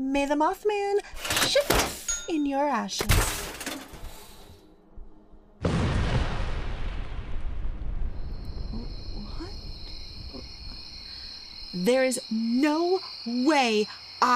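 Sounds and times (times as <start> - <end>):
speech: 0.1 - 3.4, 11.8 - 14.3
mini nuke explosion in a video game: 5.6 - 9.4.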